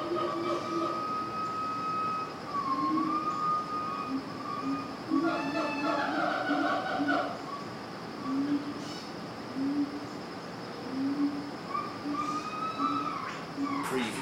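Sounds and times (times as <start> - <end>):
monkey high tonal cries in a zoo cage: 0.0 - 7.7, 11.6 - 14.2
monkeys hooting in a zoo cage: 0.0 - 10.1, 10.8 - 14.2.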